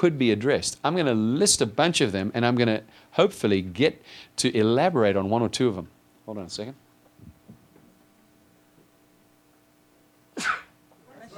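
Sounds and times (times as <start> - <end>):
speech: 0.0 - 6.8
faint room hum: 0.0 - 11.3
person sneezing: 10.4 - 10.8.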